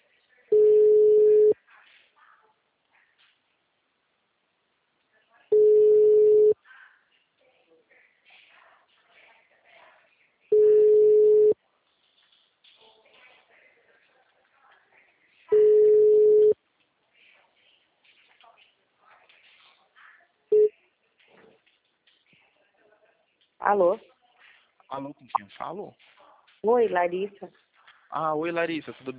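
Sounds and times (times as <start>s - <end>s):
telephone busy tone after the call hung up: 0.5s - 1.6s, 5.5s - 6.6s, 10.5s - 11.6s, 15.5s - 16.6s
speech: 23.6s - 24.1s, 24.9s - 29.1s.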